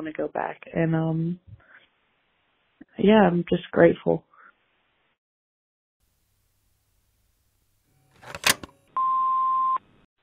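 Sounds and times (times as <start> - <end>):
speech: 0.0 - 1.6, 3.0 - 4.3
voicemail beep: 9.0 - 9.8.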